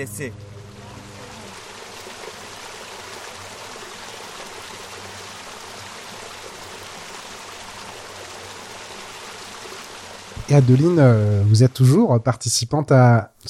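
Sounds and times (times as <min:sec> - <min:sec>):
speech: 0:00.0 - 0:00.5, 0:10.5 - 0:13.4
river water rushing and burbling: 0:00.0 - 0:11.1.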